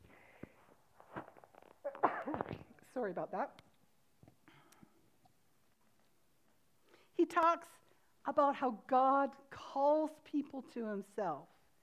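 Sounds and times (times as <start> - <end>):
person sneezing: 1.9 - 2.8
speech: 3.0 - 3.7, 7.2 - 11.5.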